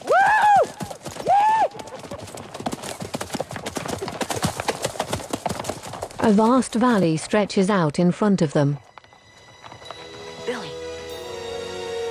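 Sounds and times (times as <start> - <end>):
horses galloping up a hill: 0.0 - 10.8
rising-and-falling cries: 0.1 - 1.9
speech: 6.2 - 8.8.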